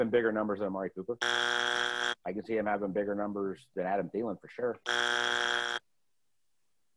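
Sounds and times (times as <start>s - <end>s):
speech: 0.0s - 5.3s
short loud electronic buzzer blast: 1.2s - 2.2s, 4.9s - 5.8s.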